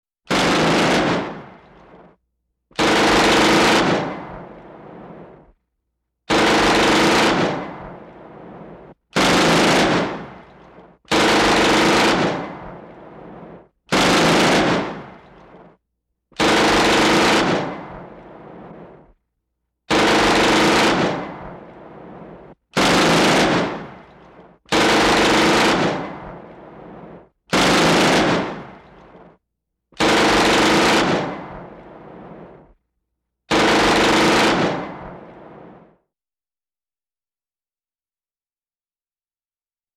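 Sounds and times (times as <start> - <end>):
machine gun firing: 0.3 - 2.2, 2.8 - 5.5, 6.3 - 15.8, 16.4 - 19.2, 19.9 - 29.4, 30.0 - 32.8, 33.5 - 36.0.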